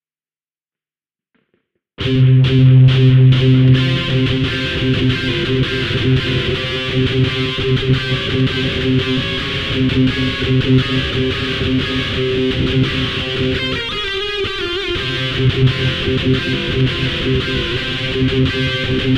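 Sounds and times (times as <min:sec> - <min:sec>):
guitar lick: 0:02.0 - 0:19.1.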